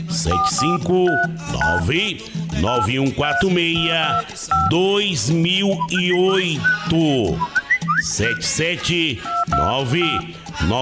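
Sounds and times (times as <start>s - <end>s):
person talking or singing: 0.0s - 10.8s
speech: 0.1s - 10.8s
short telephone keypad dialing tones: 0.2s - 1.9s, 2.6s - 4.8s, 5.7s - 8.6s, 9.2s - 10.8s.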